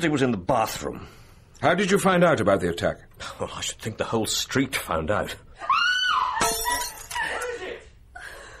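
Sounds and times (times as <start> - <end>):
speech: 0.0 - 5.7
drinking glass dropping and shattering: 6.4 - 7.4
glass pieces clinking and clattering as they settle: 6.4 - 7.4.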